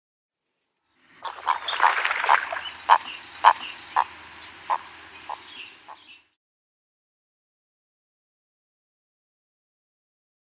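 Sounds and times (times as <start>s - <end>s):
bittern odd flight call: 1.1s - 6.2s.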